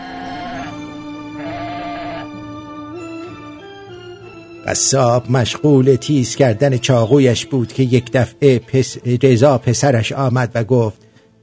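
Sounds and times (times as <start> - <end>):
person imitating sheep bleats in an old custom: 0.0 - 0.8, 1.4 - 2.3
speech: 4.7 - 11.0.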